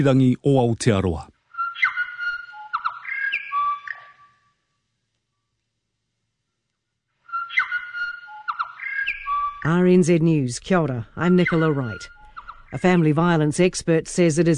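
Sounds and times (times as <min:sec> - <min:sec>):
speech: 0:00.0 - 0:01.3, 0:09.6 - 0:14.5
bellbird (korimako) singing bell-like whistled notes: 0:01.6 - 0:04.5, 0:07.3 - 0:10.4, 0:11.0 - 0:13.0.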